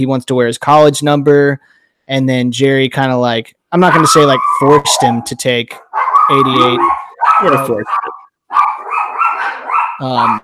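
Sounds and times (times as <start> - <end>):
speech: 0.0 - 8.1, 10.0 - 10.4
two dogs barking frantically: 3.9 - 10.4.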